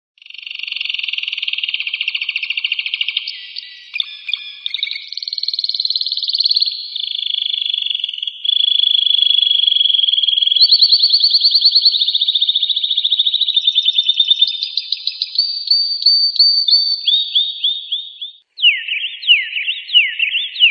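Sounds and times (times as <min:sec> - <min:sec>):
bird song of fast high buzzy trills: 0:01.7 - 0:20.6.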